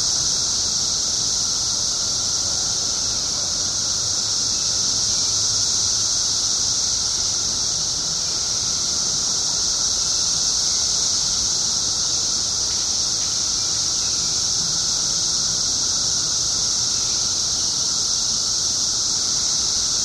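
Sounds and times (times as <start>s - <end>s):
periodical 17-year cicada chorus droning: 0.0s - 20.0s.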